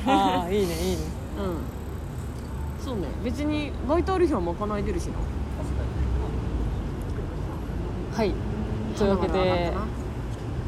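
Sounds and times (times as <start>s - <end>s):
speech: 0.0s - 1.8s, 2.8s - 5.9s, 8.2s - 10.0s
busy traffic on a main road in front of a station in Ikebukuro: 0.0s - 10.6s.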